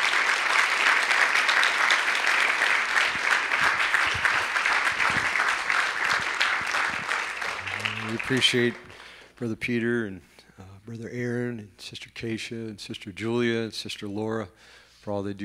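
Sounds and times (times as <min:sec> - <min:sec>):
audience applause: 0:00.0 - 0:09.2
speech: 0:08.3 - 0:15.4.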